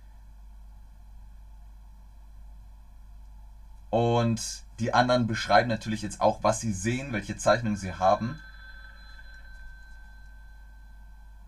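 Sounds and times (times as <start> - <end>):
low hum: 0.0 - 11.4
speech: 3.9 - 8.5
electronic phone-style ringing tone from an online drawing game: 7.8 - 11.4.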